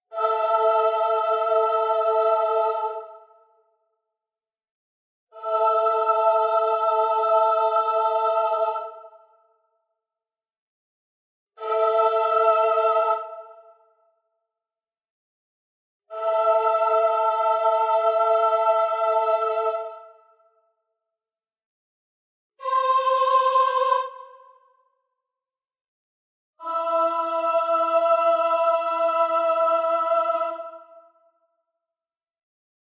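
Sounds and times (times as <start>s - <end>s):
female voice choir singing aah: 0.0s - 3.4s, 5.3s - 9.1s, 11.6s - 13.7s, 16.1s - 20.2s, 22.6s - 24.7s, 26.6s - 31.2s.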